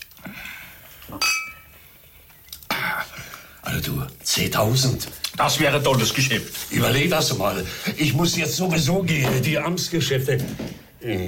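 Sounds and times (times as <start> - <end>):
speech: 1.1 - 1.4, 3.8 - 11.2
wine glasses clinking in a toast: 1.2 - 1.7.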